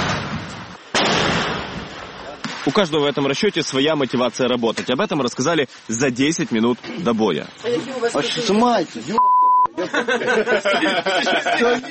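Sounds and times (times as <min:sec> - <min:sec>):
mortar fire during an assault on a road: 0:00.0 - 0:07.1
speech: 0:02.6 - 0:11.8
laughter: 0:09.7 - 0:11.8.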